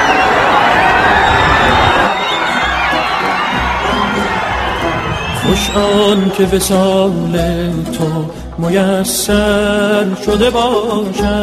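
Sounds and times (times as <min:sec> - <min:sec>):
high whoops from crowd: 0:00.0 - 0:06.4
large crowd shouting and cheering: 0:00.0 - 0:07.9
speech: 0:05.6 - 0:11.4.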